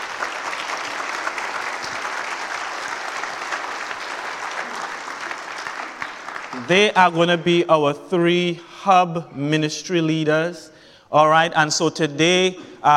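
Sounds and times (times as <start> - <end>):
audience clapping: 0.0 - 7.2
speech: 6.6 - 12.9.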